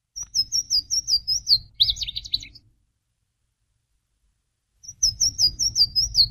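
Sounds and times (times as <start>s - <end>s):
Louisiana waterthrush singing: 0.2s - 2.7s, 4.8s - 6.2s.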